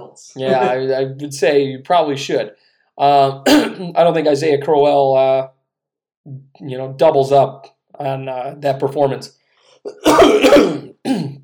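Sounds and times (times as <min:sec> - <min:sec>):
speech: 0:00.1 - 0:05.6, 0:06.3 - 0:11.4
man clearing his throat: 0:03.4 - 0:03.9, 0:09.9 - 0:11.4
man coughing: 0:03.4 - 0:03.9, 0:09.9 - 0:11.4.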